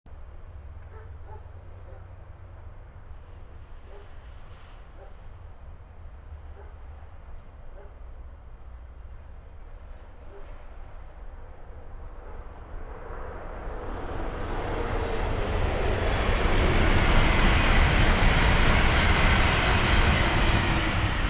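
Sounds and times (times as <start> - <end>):
train: 0.1 - 21.2.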